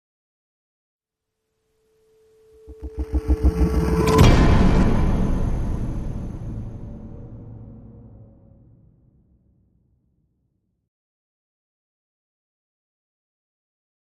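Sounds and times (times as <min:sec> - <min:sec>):
dark rising hit: 0:02.4 - 0:09.0.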